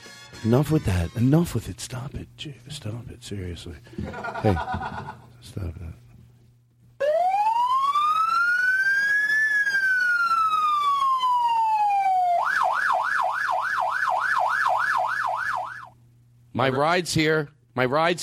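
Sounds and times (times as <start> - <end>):
speech: 0.4 - 6.0, 16.6 - 18.2
laughter: 3.9 - 5.4
police siren wailing and yelping: 7.0 - 16.0.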